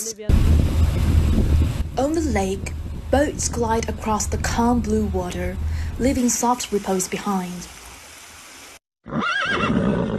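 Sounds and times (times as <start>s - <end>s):
speech: 0.1s - 7.8s
steady broadband rush: 0.2s - 7.3s
horse whinnying on a lakeshore: 9.0s - 10.1s.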